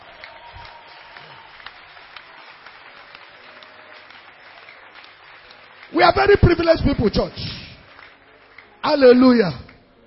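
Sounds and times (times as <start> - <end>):
audience applause: 0.0 - 9.8
speech: 5.9 - 7.5, 8.8 - 9.6.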